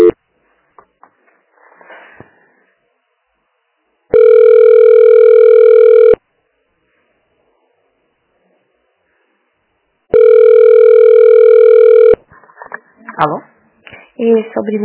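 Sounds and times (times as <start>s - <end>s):
electronic telephone ringback tone during a call transfer: 4.1s - 6.2s, 10.1s - 12.2s
speech: 14.2s - 14.8s.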